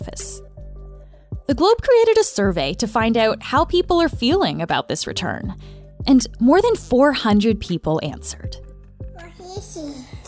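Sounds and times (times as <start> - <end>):
speech: 1.5 - 8.7, 9.4 - 10.2
toddler babbling: 9.2 - 10.2.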